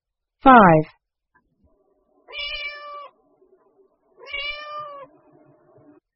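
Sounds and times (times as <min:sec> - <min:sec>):
speech: 0:00.4 - 0:01.0
cat meowing: 0:02.3 - 0:03.2, 0:04.2 - 0:05.2.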